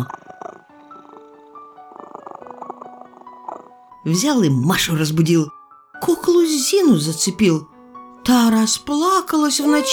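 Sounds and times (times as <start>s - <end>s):
cat purring: 0.0s - 4.0s
speech: 4.0s - 9.9s.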